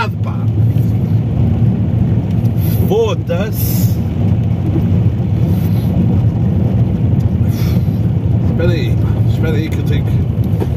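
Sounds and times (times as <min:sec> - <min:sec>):
car engine rumbling while parking: 0:00.0 - 0:10.7
speech: 0:02.9 - 0:03.8, 0:08.6 - 0:10.4.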